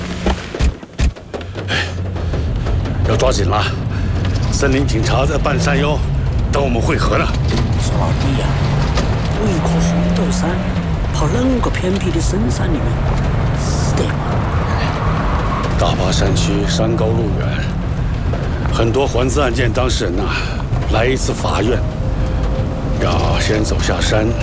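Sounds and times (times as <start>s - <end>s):
car engine starting and revving after being stuck in a mud pit: 0.0s - 0.9s, 1.6s - 24.4s
sharp knocks: 0.2s - 3.4s
people talking: 3.1s - 3.8s, 4.5s - 8.6s, 9.3s - 13.0s, 13.6s - 15.0s, 15.8s - 17.8s, 18.7s - 21.9s, 23.0s - 24.4s.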